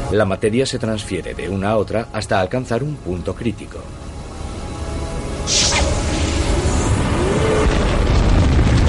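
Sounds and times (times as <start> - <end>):
speech: 0.1 - 4.1
explosion boom: 5.5 - 8.8
rumbling roar: 5.5 - 8.8.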